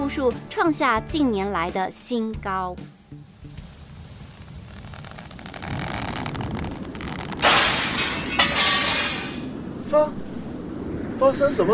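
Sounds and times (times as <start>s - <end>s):
speech: 0.1s - 3.0s, 9.9s - 10.3s, 11.2s - 11.7s
typhoon wind and rain roaring: 3.1s - 11.7s
glass debris tinkling and rattling as it settles: 7.0s - 9.5s
living-room window glass breaking during a typhoon in Taiwan: 7.3s - 9.5s.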